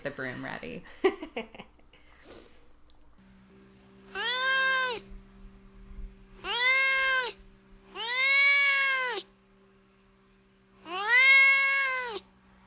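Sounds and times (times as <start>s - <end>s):
speech: 0.0s - 1.6s
cat meowing: 4.1s - 5.1s, 6.4s - 9.3s, 10.8s - 12.2s.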